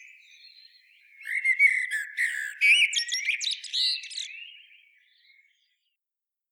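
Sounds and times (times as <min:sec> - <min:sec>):
common blackbird singing, Turdus merula: 0:00.0 - 0:05.3.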